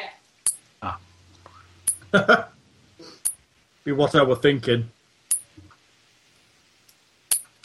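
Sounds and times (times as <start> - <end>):
sharp metallic chinks: 0.4 - 0.7, 1.9 - 2.1, 5.3 - 5.6, 7.3 - 7.6
speech: 2.1 - 2.5, 3.9 - 5.0.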